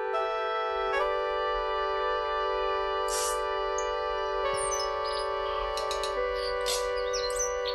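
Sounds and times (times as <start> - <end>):
sustained layered electronic tones from a MIDI demo of an orchestral piece: 0.2 - 7.7
bright chirps and clicks mimicking tui song: 3.1 - 4.0, 4.6 - 7.7.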